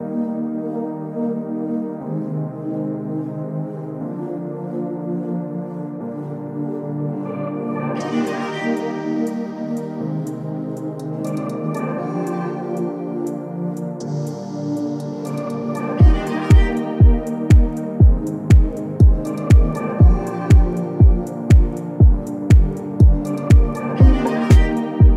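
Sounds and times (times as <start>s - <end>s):
telephone hold music: 7.3s - 25.1s.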